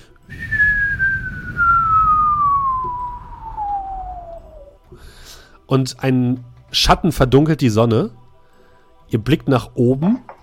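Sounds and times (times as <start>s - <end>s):
low rumbling background: 0.2s - 5.5s
cartoonish falling whistle sound effect: 0.3s - 4.8s
speech: 5.7s - 8.2s, 9.1s - 10.4s.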